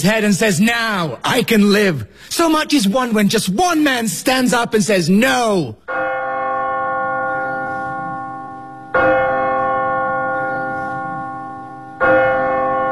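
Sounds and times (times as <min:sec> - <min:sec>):
speech: 0:00.0 - 0:06.1
church bell striking: 0:05.8 - 0:12.9.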